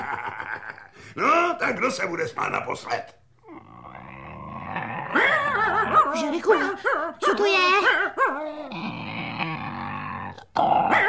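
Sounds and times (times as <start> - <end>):
speech: 1.2 - 3.2, 6.2 - 9.0, 10.6 - 11.0
bear growling: 3.4 - 6.4, 8.1 - 11.0.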